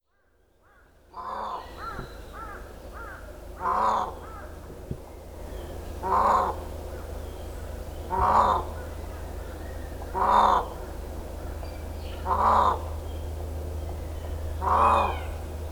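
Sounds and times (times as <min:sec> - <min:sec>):
constant low hum: 0:01.0 - 0:15.6
Indian peafowl calling with a harsh honking wail in Miyakojima: 0:01.2 - 0:04.6, 0:05.4 - 0:13.0, 0:14.5 - 0:15.5.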